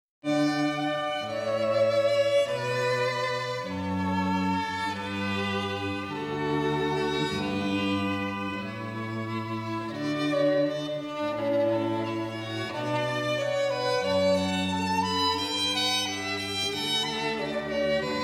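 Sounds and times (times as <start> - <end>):
cello in a string trio: 0.2 - 18.2
violin in a string trio: 0.2 - 18.2.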